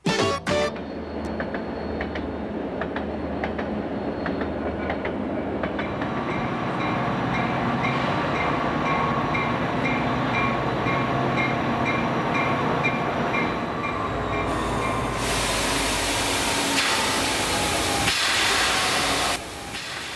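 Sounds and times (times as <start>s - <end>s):
train riding along rails: 0.0s - 20.1s
loud hissing steam: 14.5s - 20.1s.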